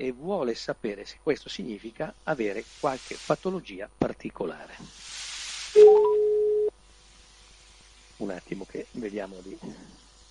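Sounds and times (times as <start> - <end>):
speech: 0.0 - 6.0, 8.2 - 10.0
telephone line noise hiss: 0.0 - 10.3
telephone line tone while placing a call: 5.8 - 6.7.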